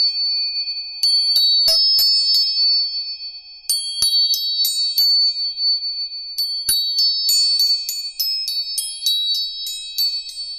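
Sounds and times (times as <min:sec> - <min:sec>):
tuning forks ringing in high metallic tones: 0:00.5 - 0:10.5.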